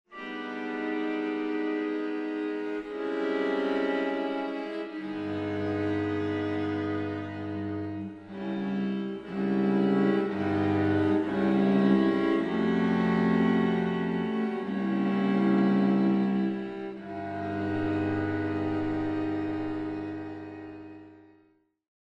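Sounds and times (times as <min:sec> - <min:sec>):
chorale: 0:00.1 - 0:21.2.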